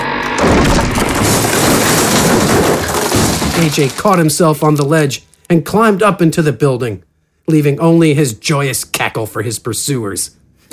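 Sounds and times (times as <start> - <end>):
bridge collapsing into the street with a booming crash: 0.4 - 4.0
sustained roar of tumbling debris and rubble: 0.4 - 5.0
speech: 3.6 - 10.7.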